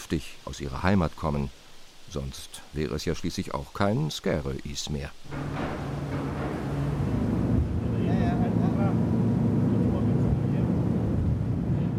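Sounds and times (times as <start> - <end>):
speech: 0.1 - 5.8
ferry engine droning while docking in harbour: 5.3 - 11.9.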